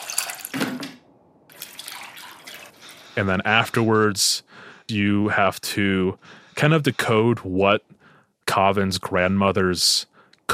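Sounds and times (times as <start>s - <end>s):
water being mixed into tamarind paste: 1.5s - 3.0s
speech: 3.2s - 10.5s.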